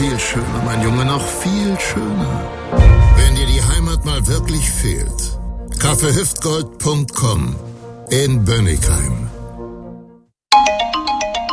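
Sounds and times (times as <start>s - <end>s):
speech: 0.2s - 9.4s
tonal passage: 2.7s - 6.8s
smartphone ringtone: 10.5s - 11.5s.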